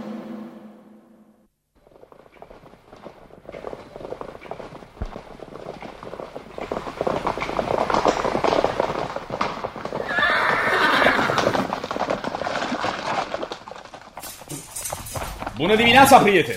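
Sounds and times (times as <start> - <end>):
hooves clip-clopping on a hard surface: 1.7 - 16.5
horse neighing: 9.9 - 11.9
speech: 15.7 - 16.5.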